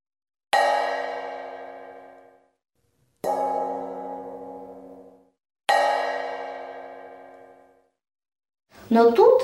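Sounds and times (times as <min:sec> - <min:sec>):
large frying pan struck, ringing with a bell-like metallic tone: 0:00.5 - 0:02.5, 0:03.2 - 0:07.9
speech: 0:08.9 - 0:09.4.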